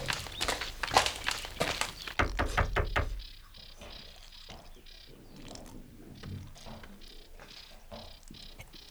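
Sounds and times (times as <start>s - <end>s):
hard-soled footsteps approaching: 0.0s - 4.7s
sharp knocks on a door in India: 2.2s - 3.4s.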